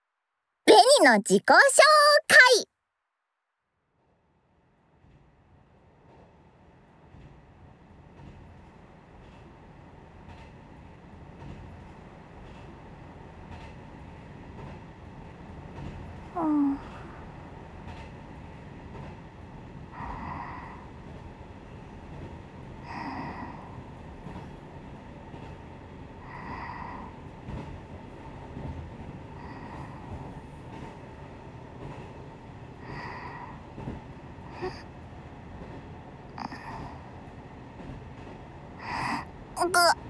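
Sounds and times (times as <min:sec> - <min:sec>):
speech: 0:01.0 - 0:02.7, 0:16.4 - 0:16.9, 0:39.7 - 0:40.0
Kiha 100 series diesel railcar Kiha 101 running on rails: 0:06.4 - 0:16.2, 0:17.3 - 0:22.8, 0:23.5 - 0:39.5.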